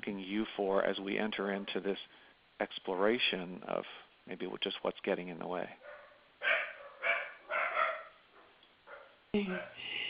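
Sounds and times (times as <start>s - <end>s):
speech: 0.1s - 6.6s, 9.3s - 10.0s
dogs barking at something outside: 1.5s - 1.8s, 5.8s - 9.8s.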